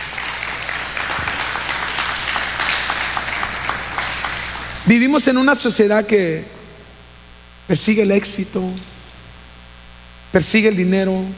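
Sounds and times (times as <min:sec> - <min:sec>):
crowd applauding: 0:00.0 - 0:05.0
speech: 0:04.9 - 0:06.6, 0:07.7 - 0:08.9, 0:10.3 - 0:11.3.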